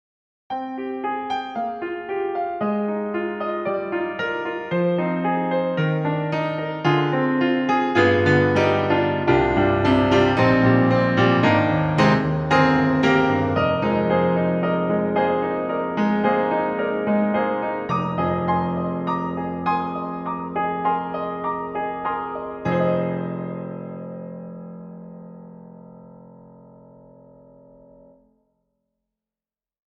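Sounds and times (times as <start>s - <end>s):
Bechstein Master piano: 0.5s - 28.5s.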